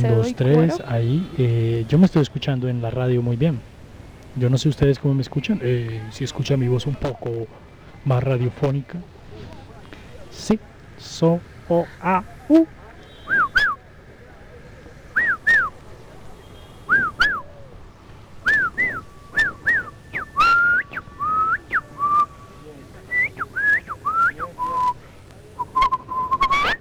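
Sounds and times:
person whistling: 0.0s - 1.4s, 12.1s - 13.8s, 15.2s - 15.7s, 16.9s - 17.5s, 18.4s - 25.0s, 25.6s - 26.7s
laughter: 0.0s - 3.7s, 4.3s - 13.8s
speech: 0.0s - 3.7s, 4.4s - 9.6s, 10.3s - 13.5s
faint noise: 0.0s - 26.7s.

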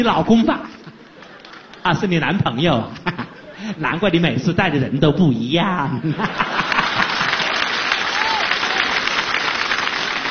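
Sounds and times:
speech: 0.0s - 0.8s, 1.8s - 6.6s
laughter: 0.6s - 4.1s, 5.8s - 10.3s
audience applause at a live stage show: 0.7s - 2.3s, 6.4s - 10.3s.

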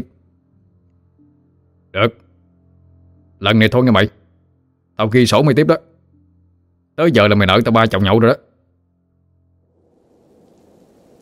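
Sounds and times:
speech: 2.0s - 2.2s, 3.4s - 4.2s, 5.0s - 5.9s, 7.0s - 8.5s
low rumble: 9.4s - 11.2s
heavy thunderstorm rain pouring: 9.8s - 11.2s.

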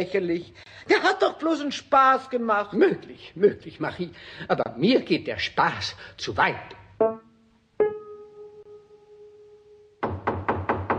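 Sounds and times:
speech: 0.0s - 7.2s
knocking on a door: 10.0s - 10.9s.

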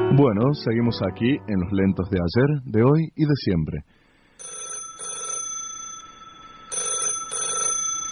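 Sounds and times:
speech: 0.2s - 4.0s
telephone ringing with an incoming call: 4.4s - 8.1s.

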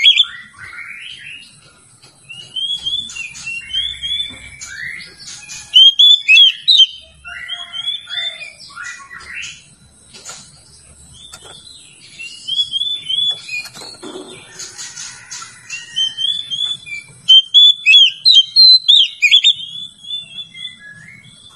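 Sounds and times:
Oriental magpie-robin singing: 0.0s - 1.5s, 2.3s - 9.7s, 10.7s - 14.6s, 15.3s - 21.5s.

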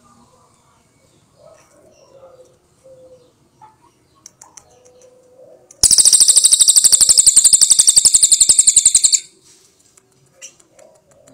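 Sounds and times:
Cililin bird singing fast trill of high sharp notes: 5.8s - 9.3s.

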